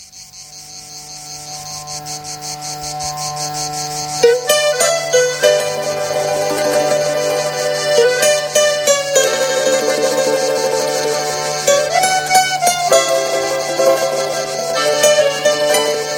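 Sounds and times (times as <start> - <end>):
crickets chirping: 0.0 - 16.1
sustained musical drone: 1.6 - 16.1
brighter instruments: 4.0 - 16.1.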